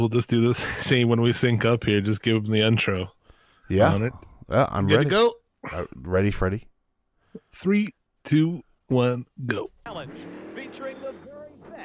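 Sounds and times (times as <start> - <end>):
speech: 0.0 - 6.7, 7.4 - 11.2
jet-powered tractor-pull vehicle engine roar: 10.0 - 11.8.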